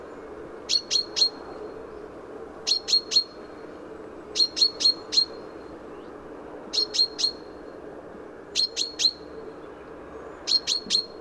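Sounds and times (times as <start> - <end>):
low background hum: 0.0 - 11.1
common chaffinch calls: 0.7 - 1.5, 2.6 - 3.4, 4.4 - 5.4, 6.7 - 7.5, 8.6 - 9.3, 10.4 - 11.1.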